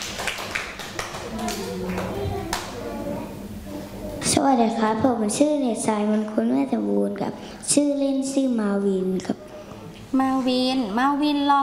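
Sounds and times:
scattered clapping from a classroom group: 0.0s - 2.8s
children chattering and murmuring: 1.1s - 6.7s, 8.4s - 11.6s
speech: 4.4s - 9.4s, 10.1s - 11.6s.

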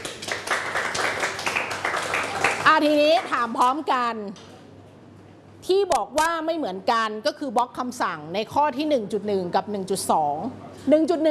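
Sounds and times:
classmates clapping in a classroom: 0.0s - 3.7s
speech: 2.8s - 4.5s, 5.6s - 11.2s.

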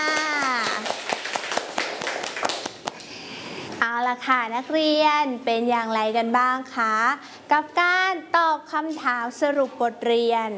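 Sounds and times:
children clapping hands: 0.0s - 3.1s
speech: 4.2s - 10.5s.

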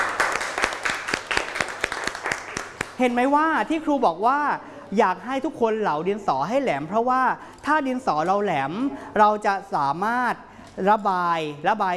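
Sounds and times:
classroom children clapping during an art lesson: 0.0s - 3.0s
speech: 3.0s - 11.9s.

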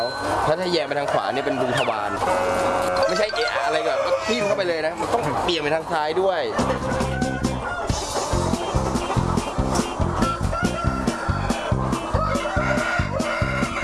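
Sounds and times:
speech: 0.0s - 7.4s
flock of black-tailed Pradu Hang Dam chickens clucking: 0.0s - 13.8s
Pradu Hang Dam chicken crowing: 2.3s - 4.7s, 6.7s - 8.1s, 10.2s - 13.8s.

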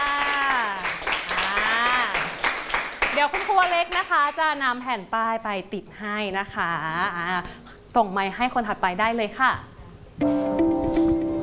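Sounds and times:
students clapping in a classroom: 0.0s - 4.4s
speech: 3.2s - 11.0s.

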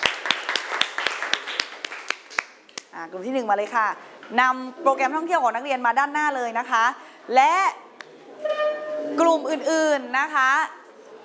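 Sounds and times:
students clapping in a classroom: 0.0s - 2.9s
speech: 3.0s - 7.8s, 9.1s - 10.8s.

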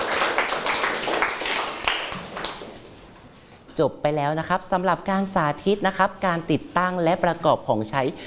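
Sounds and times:
group of children clapping for a classmate: 0.0s - 3.0s
speech: 3.8s - 8.2s.

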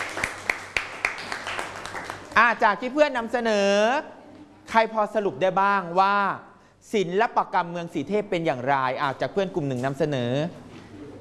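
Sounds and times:
classroom applause for a classmate's presentation: 0.0s - 2.6s
speech: 2.4s - 10.6s.

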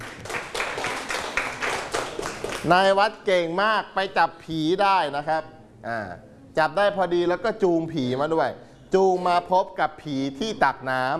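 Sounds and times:
hands clapping in praise: 0.0s - 2.8s
speech: 2.6s - 11.1s.

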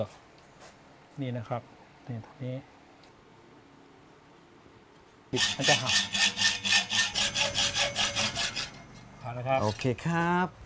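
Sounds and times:
speech: 1.2s - 2.7s, 5.3s - 6.2s, 9.2s - 10.6s
hand saw cutting an old-style steel bicycle frame tube: 5.4s - 9.9s.

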